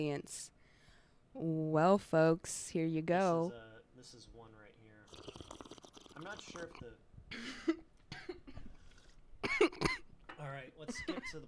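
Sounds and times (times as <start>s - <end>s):
speech: 0.0s - 0.6s, 1.4s - 5.6s, 6.2s - 8.4s, 9.6s - 11.4s
woman coughing into a microphone: 7.3s - 8.8s, 9.4s - 10.2s.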